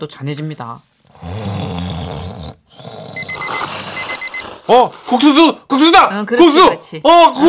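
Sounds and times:
speech: 0.0 - 1.6, 4.7 - 7.4
alarm clock with rapid high-pitched electronic beeps: 3.2 - 4.8.

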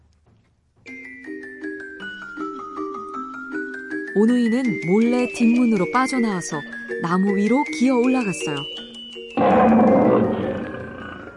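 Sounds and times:
speech: 4.2 - 8.8
tiger roaring: 9.4 - 11.3.

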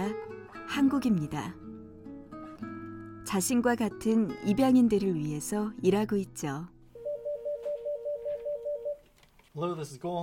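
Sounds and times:
speech: 0.0 - 1.6, 3.3 - 6.8, 9.6 - 10.2
electronic telephone ringer trilling in an office: 7.0 - 9.0.

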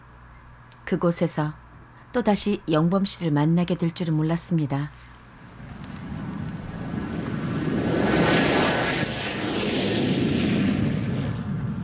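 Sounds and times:
speech: 0.9 - 5.2
thin high whine of airplane: 4.8 - 11.2
airplane engine roar inside plane cabin: 5.3 - 11.8.

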